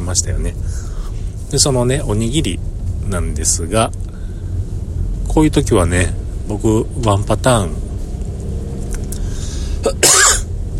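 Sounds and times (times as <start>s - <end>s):
low hum: 0.0s - 10.7s
speech: 0.1s - 4.0s, 5.3s - 7.8s
single harsh raspy cough: 9.8s - 10.5s.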